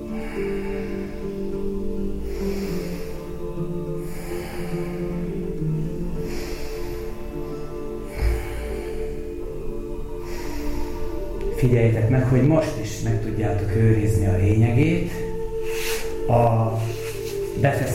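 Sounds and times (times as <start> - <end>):
breaths drawn in through the nose during an abdominal breathing exercise: 0.0 - 3.4, 4.0 - 11.4, 15.5 - 16.3
steady humming background: 0.0 - 17.9
speech: 11.6 - 15.2, 16.3 - 16.9, 17.6 - 17.9.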